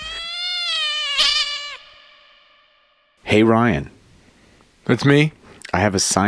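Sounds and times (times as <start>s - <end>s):
cat meowing: 0.0s - 2.0s
speech: 3.3s - 4.0s, 4.9s - 6.2s.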